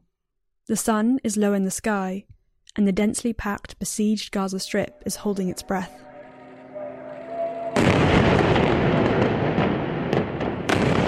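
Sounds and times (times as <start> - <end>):
speech: 0.7 - 6.0
faint tonal hum: 4.0 - 8.7
explosions in a cluster of high-rise buildings in the Gaza Strip: 7.8 - 11.0.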